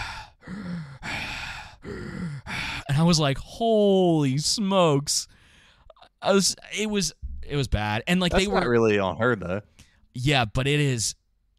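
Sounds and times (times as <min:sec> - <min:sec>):
person imitating a woman's wheezy, short-of-breath breathing: 0:00.0 - 0:02.9
speech: 0:03.0 - 0:05.4, 0:06.2 - 0:11.2.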